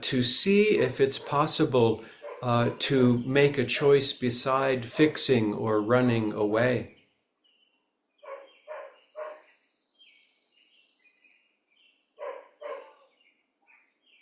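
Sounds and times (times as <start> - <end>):
speech: 0.0 - 7.0
birds chirping and twittering: 0.2 - 14.1
dog barking next door: 1.2 - 1.5, 2.2 - 2.8, 8.2 - 9.5, 12.2 - 13.1.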